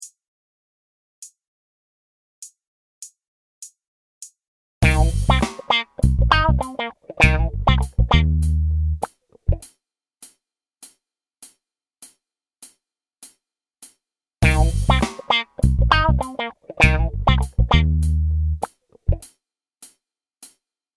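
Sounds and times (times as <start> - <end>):
funk improvisation: 4.8 - 9.7, 14.4 - 19.3.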